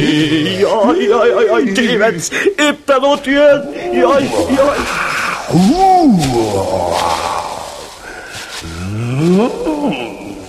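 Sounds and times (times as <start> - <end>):
speech: 0.0 - 7.3, 9.2 - 10.0
gorilla roaring fiercely: 3.6 - 10.4.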